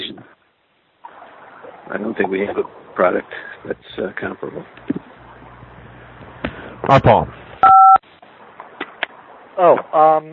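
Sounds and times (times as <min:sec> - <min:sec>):
speech: 0:01.9 - 0:05.1, 0:06.9 - 0:07.4, 0:09.6 - 0:10.3
touch-tone beep of a smartphone being dialed: 0:07.6 - 0:08.0.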